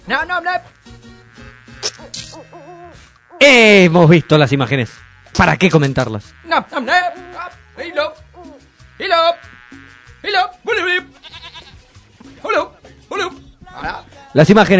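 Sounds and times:
speech: 0.1 - 1.1, 3.4 - 8.2, 9.0 - 9.6, 10.2 - 11.5, 12.4 - 14.7
goat bleating: 0.6 - 5.4, 6.2 - 11.9.

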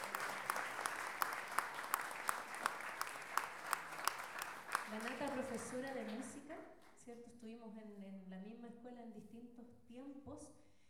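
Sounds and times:
audience applause at a music launch event: 0.0 - 6.4
speech: 5.0 - 10.6.

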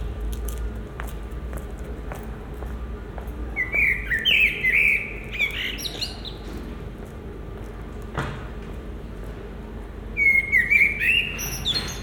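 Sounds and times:
common blackbird singing a varied fluting phrase in Marolles, Brussels, Belgium: 3.6 - 6.5, 10.2 - 12.0.

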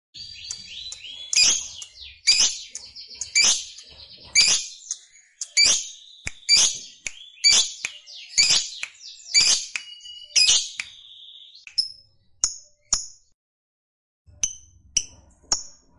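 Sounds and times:
fighter-type lovebird chirping and singing energetically: 0.2 - 13.1.

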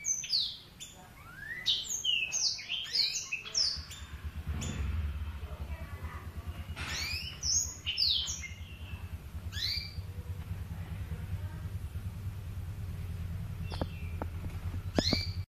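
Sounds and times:
Oriental magpie-robin singing: 0.0 - 4.9, 6.0 - 10.6, 12.6 - 15.5
steady low hum: 3.6 - 15.5
sharp clicks: 13.6 - 15.4.

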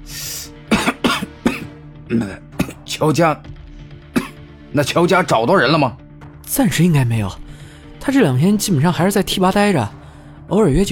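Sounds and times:
man coughing after choking on cigar smoke: 0.6 - 3.0, 4.1 - 4.5
speech: 2.1 - 3.5, 4.7 - 7.4, 8.0 - 10.8.

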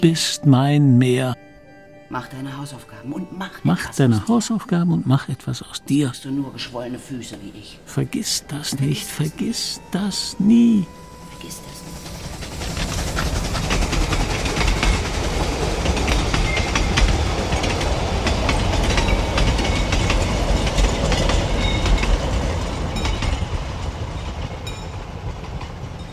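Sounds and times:
speech: 0.0 - 1.5, 2.1 - 12.0
train rumbling past on rails: 2.6 - 26.1.

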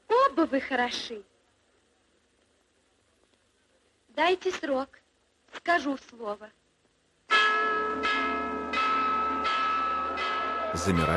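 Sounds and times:
speech: 0.4 - 1.3, 4.2 - 6.6, 10.7 - 11.1
church bell ringing: 7.3 - 11.1.

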